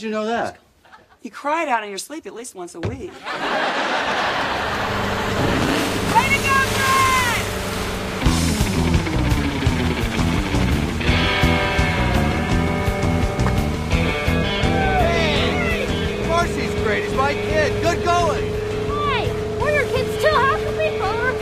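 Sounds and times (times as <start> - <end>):
speech: 0.0 - 0.6, 1.2 - 4.8
motorboat inboard big block V8 engine rumbling: 2.8 - 21.3
laughter: 3.1 - 5.5.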